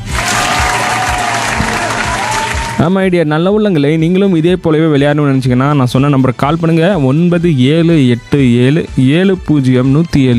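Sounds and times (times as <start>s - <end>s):
group applauding a player after a game: 0.0s - 2.8s
speech: 2.8s - 10.3s.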